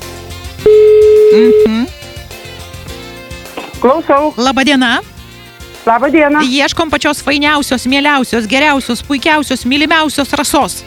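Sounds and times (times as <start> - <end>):
steady loud telephone tone as a radio studio places a call: 0.7 - 1.8
speech: 1.3 - 2.0, 3.8 - 5.1, 5.8 - 10.8.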